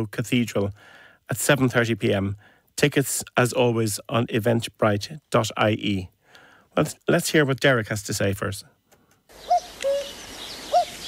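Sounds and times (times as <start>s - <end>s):
speech: 0.0s - 6.2s, 6.8s - 9.6s
hiss: 0.0s - 11.0s
cuckoo giving its two-note call: 9.3s - 11.0s.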